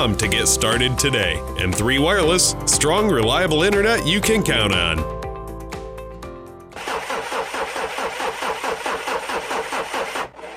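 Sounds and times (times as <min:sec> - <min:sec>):
speech: 0:00.0 - 0:05.2
car engine cranking but failing to start: 0:06.8 - 0:10.5.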